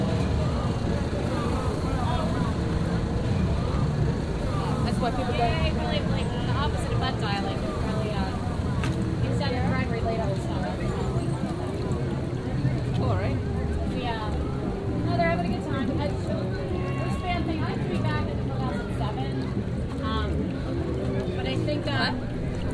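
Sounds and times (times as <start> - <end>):
dense crowd chatter at a state fair: 0.0 - 22.7
low rumble of engines: 0.0 - 22.7.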